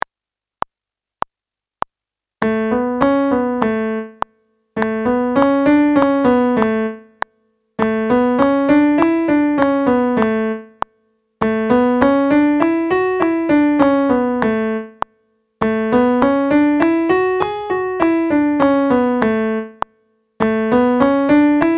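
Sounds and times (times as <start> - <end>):
piano A scale exercise: 2.4 - 21.7.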